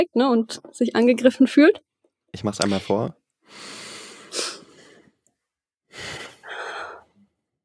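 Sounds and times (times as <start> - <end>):
speech: 0.0 - 3.8
slow deep breath drawn in: 3.5 - 5.1, 5.9 - 7.2.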